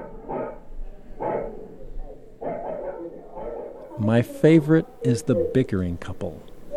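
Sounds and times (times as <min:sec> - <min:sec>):
dog barking muffled through a closed apartment door: 0:00.0 - 0:04.0
speech: 0:04.0 - 0:06.5.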